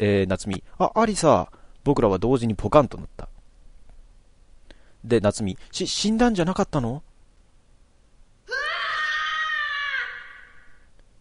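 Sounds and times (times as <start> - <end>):
speech: 0.0 - 3.3, 5.0 - 7.1
loud scream from behind a door: 8.5 - 10.9.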